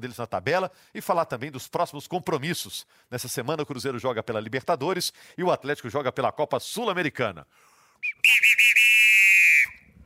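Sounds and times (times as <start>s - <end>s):
speech: 0.0s - 8.5s
bird-call whistle chirping and trilling: 8.0s - 10.0s.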